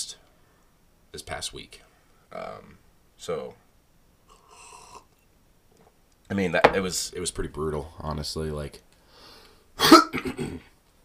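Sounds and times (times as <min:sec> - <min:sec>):
speech: 0:01.2 - 0:03.6, 0:06.3 - 0:08.9, 0:09.8 - 0:10.7
loud cough with rasping hacks: 0:09.8 - 0:10.7.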